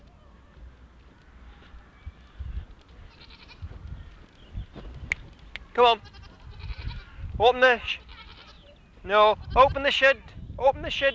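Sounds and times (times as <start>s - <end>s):
goat bleating: 3.1s - 3.7s, 5.9s - 7.2s, 7.8s - 10.0s
speech: 5.8s - 6.2s, 7.4s - 8.0s, 9.0s - 11.1s.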